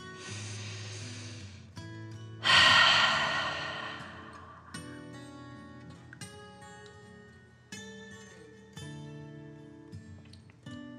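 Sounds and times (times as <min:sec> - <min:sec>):
deep breath in and out during a children's relaxation exercise: 0:00.0 - 0:01.6, 0:02.4 - 0:05.2.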